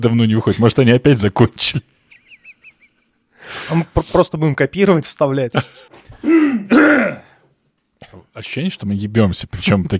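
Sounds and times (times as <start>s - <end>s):
speech: 0.0s - 2.0s, 3.4s - 7.2s, 8.1s - 9.9s
rasping throat-clearing coughs: 5.7s - 7.4s.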